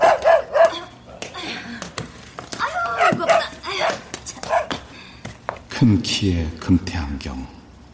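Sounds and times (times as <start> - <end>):
dog barking: 0.0 - 0.8, 2.9 - 4.8
speech: 5.8 - 7.6.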